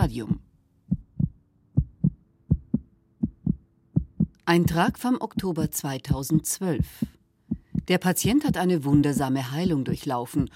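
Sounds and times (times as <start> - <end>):
speech: 0.1 - 0.4, 4.5 - 7.1, 7.9 - 10.5
faint heartbeat: 0.9 - 10.5.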